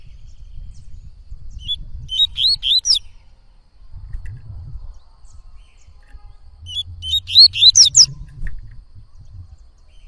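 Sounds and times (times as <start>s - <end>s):
low background rumble: 0.0s - 10.0s
Yellow-bellied Seedeater singing: 6.7s - 8.1s.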